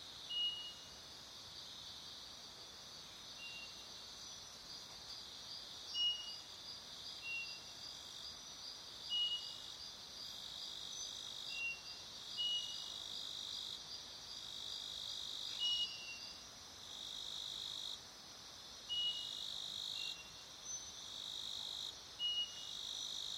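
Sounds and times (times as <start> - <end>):
high-pitched insect chorus in a Madagascar rainforest: 0.0 - 23.3.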